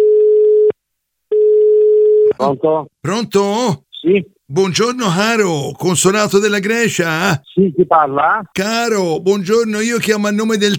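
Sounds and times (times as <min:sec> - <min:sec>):
electronic ringing tone on an outgoing phone call: 0:01.3 - 0:02.3
speech: 0:02.4 - 0:10.7.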